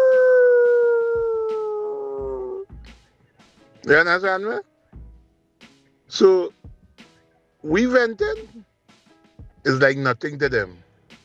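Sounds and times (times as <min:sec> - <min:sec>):
dog howling: 0:00.0 - 0:02.6
speech: 0:03.9 - 0:04.7, 0:06.1 - 0:06.6, 0:07.6 - 0:08.7, 0:09.6 - 0:10.8.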